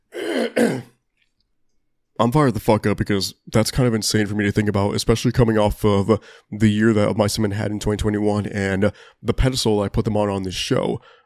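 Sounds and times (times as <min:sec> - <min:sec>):
raspy throat clearing: 0:00.1 - 0:01.0
speech: 0:02.2 - 0:11.2.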